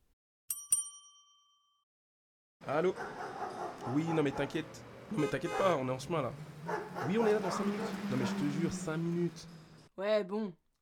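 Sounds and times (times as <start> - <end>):
bright metallic notification bell dings: 0.5 - 1.8
speech: 2.6 - 3.2, 3.8 - 10.6.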